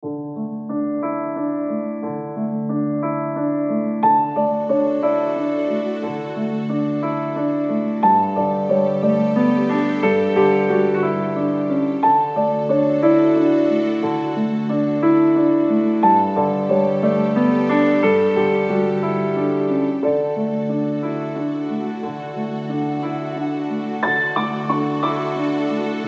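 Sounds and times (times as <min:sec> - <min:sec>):
inspiring cinematic uplifting piano: 0:00.0 - 0:26.0.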